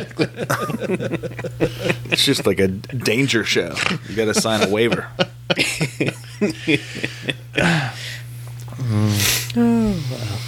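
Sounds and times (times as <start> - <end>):
speech: 0.0 - 8.0
laughter: 0.0 - 8.2
person yawning: 8.7 - 10.4.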